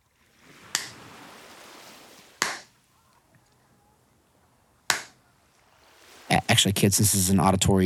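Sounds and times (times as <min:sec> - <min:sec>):
soft hiss of noise: 0:00.0 - 0:07.8
hand slapping sunscreen onto bare belly: 0:00.7 - 0:01.0, 0:02.4 - 0:02.7, 0:04.9 - 0:05.2
speech: 0:06.3 - 0:07.8.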